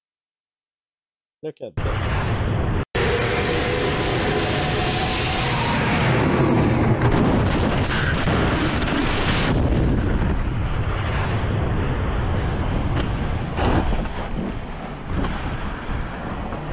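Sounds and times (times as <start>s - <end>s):
speech: 1.4s - 2.6s
military jet exploding: 1.8s - 16.7s
choppy noise bursts: 2.7s - 10.5s.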